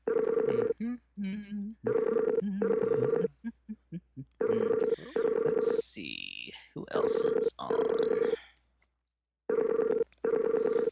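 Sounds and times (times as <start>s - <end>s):
outgoing call ringing tone: 0.0s - 0.7s, 1.9s - 3.3s, 4.4s - 5.8s, 7.2s - 8.4s, 9.5s - 10.9s
speech: 0.8s - 3.1s.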